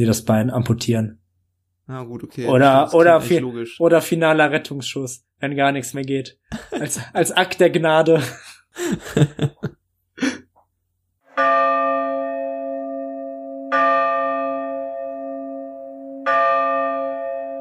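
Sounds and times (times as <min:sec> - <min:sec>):
speech: 0:00.0 - 0:01.2, 0:01.9 - 0:09.8
laughter: 0:06.5 - 0:07.4, 0:08.1 - 0:10.4
person coughing: 0:10.2 - 0:10.5
throat clearing: 0:10.2 - 0:10.6
deep church bell tolling at midnight: 0:11.4 - 0:17.5.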